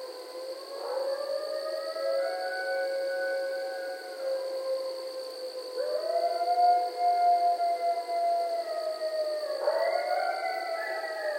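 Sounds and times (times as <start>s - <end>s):
several coyotes howling: 0.0s - 11.3s.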